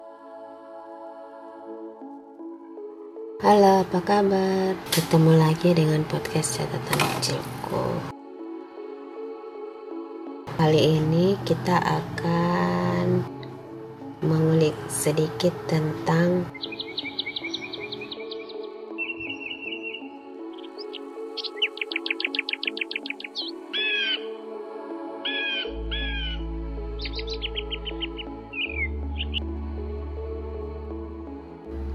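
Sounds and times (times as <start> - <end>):
speech: 3.4 - 8.1, 10.6 - 13.3, 14.2 - 16.7
birds chirping and trilling: 15.8 - 24.4, 25.2 - 26.4, 27.0 - 29.5
crow cawing: 20.7 - 24.3, 25.2 - 26.4.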